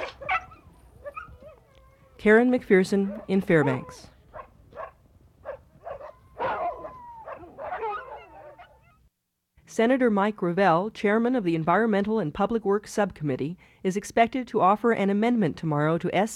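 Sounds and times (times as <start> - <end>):
sled dogs howling and barking in frosty snowy woods: 0.0 - 2.2, 3.0 - 9.0
speech: 2.2 - 4.1, 9.8 - 16.3.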